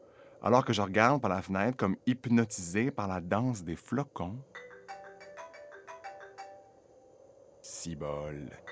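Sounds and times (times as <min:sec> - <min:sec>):
speech: 0:00.4 - 0:04.7, 0:07.9 - 0:08.7
mobile phone ringtone: 0:04.5 - 0:06.8, 0:08.6 - 0:08.7.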